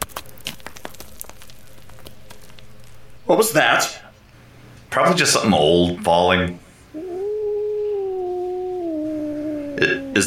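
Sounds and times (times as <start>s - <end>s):
speech: 3.3s - 4.0s, 4.9s - 6.6s, 9.8s - 10.2s
cat yowling: 6.9s - 10.2s.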